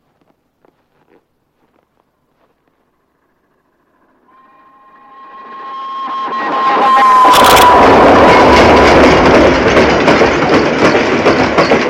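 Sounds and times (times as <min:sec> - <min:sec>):
train passing on rails: 0:02.1 - 0:11.8
heavy low train engine drone: 0:02.6 - 0:05.6, 0:06.3 - 0:10.8
faint high whistle-like tone: 0:04.3 - 0:09.5
train wheels clickety-clacking over track joints: 0:07.4 - 0:11.8.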